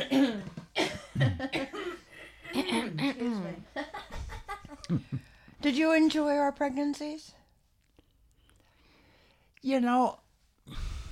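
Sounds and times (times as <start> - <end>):
man clearing his throat: 0.0 - 3.3
coughing: 0.0 - 3.7
speech: 4.9 - 7.4, 9.6 - 10.8.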